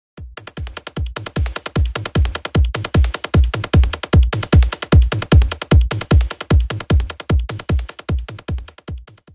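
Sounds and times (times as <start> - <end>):
house beat: 0.2 - 9.3.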